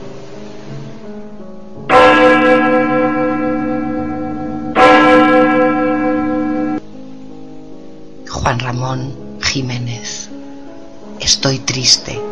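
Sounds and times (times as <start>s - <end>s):
church bell ringing: 1.9s - 6.8s
speech: 8.5s - 10.3s, 11.3s - 12.3s.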